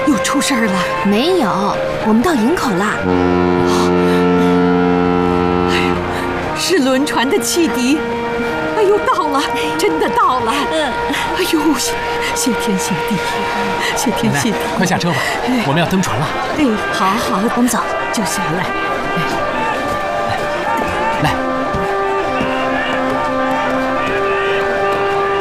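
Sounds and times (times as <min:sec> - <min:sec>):
faint horn-like tones: 0:00.0 - 0:15.4, 0:16.2 - 0:25.3
busy crowd chatter and bustle: 0:00.0 - 0:25.3
deep ship's steam whistle blast: 0:02.8 - 0:14.8, 0:19.8 - 0:25.3
laughter: 0:03.3 - 0:06.5, 0:09.3 - 0:25.3.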